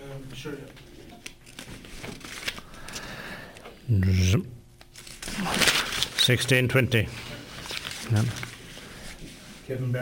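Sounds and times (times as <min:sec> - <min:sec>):
speech: 0:00.3 - 0:00.9, 0:03.9 - 0:04.6, 0:06.3 - 0:07.3, 0:08.1 - 0:08.4, 0:09.7 - 0:10.0
sheet of paper crinkling and rustling: 0:01.1 - 0:03.0, 0:04.8 - 0:09.4.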